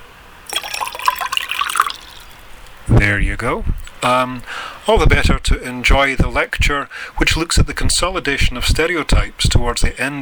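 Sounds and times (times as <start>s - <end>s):
whiskey being poured as a small dram: 0.4s - 2.8s
speech: 3.0s - 10.2s.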